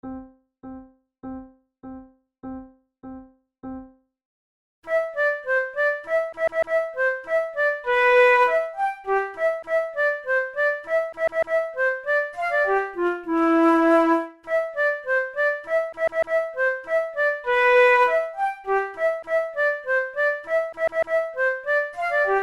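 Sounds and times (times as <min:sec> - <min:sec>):
flute duet playing a waltz: 0:04.9 - 0:22.4.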